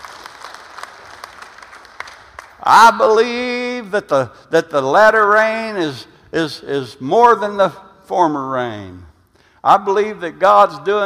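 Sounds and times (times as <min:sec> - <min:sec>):
church congregation clapping along during a sermon: 0:00.0 - 0:03.6
speech: 0:02.6 - 0:11.0.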